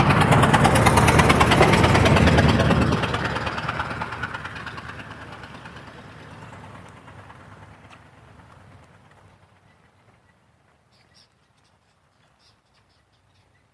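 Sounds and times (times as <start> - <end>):
truck engine rumbling with a rough pulsing idle: 0.0 - 9.6.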